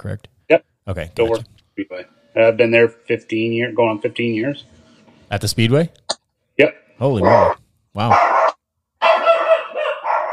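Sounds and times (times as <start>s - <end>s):
speech: 0.0s - 8.3s
dog barking and howling: 7.2s - 10.3s.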